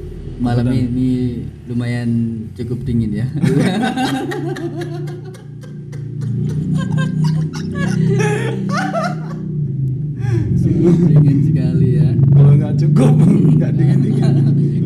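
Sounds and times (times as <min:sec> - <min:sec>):
people chatting: 0:00.0 - 0:09.4, 0:10.2 - 0:14.8
motorcycle engine rumbling: 0:00.0 - 0:14.8
speech: 0:00.4 - 0:05.3, 0:10.3 - 0:14.8
people chuckling: 0:03.4 - 0:09.4, 0:13.0 - 0:14.8.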